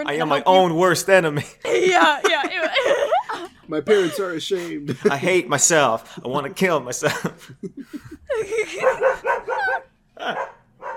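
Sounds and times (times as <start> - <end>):
speech: 0.0 - 3.0, 3.7 - 10.5
laughter: 1.4 - 5.7, 6.9 - 10.5
dog barking with loud yelping barks: 8.7 - 10.9.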